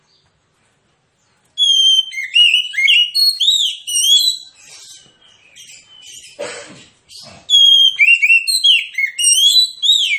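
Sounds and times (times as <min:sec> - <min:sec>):
Oriental magpie-robin song of whistled notes ending in a buzzy rattle: 0:01.6 - 0:06.4, 0:07.1 - 0:10.1.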